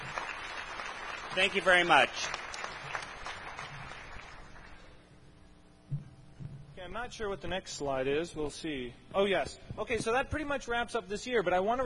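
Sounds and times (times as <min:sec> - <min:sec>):
audience applauding volunteers at a community presentation: 0:00.0 - 0:04.9
speech: 0:01.3 - 0:02.4, 0:06.9 - 0:11.8.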